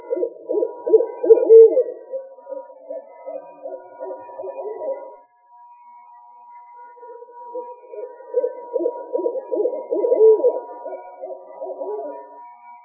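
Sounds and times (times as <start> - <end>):
owl hooting with low throbbing hoots: 0.0 - 5.2, 7.0 - 12.4
faint steady tone: 0.0 - 12.8.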